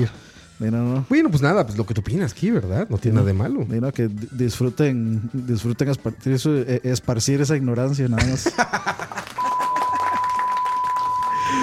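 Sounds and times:
speech: 0:00.0 - 0:09.2
laughter: 0:08.2 - 0:10.4
high-pitched censorship bleep: 0:09.4 - 0:11.6.

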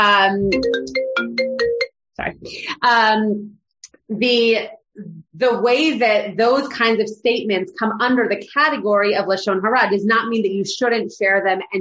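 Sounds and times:
speech: 0:00.0 - 0:01.1, 0:02.2 - 0:11.7
melodic phone ringtone during incoming call: 0:00.4 - 0:01.9.

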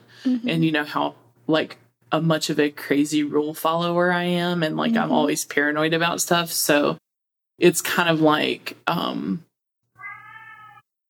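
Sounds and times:
speech: 0:00.2 - 0:07.0, 0:07.6 - 0:09.5
cat meowing: 0:10.0 - 0:10.9.

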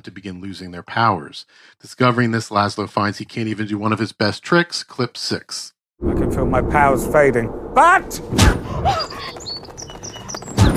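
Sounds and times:
speech: 0:00.0 - 0:09.4
sparrow chirping: 0:08.7 - 0:10.7.

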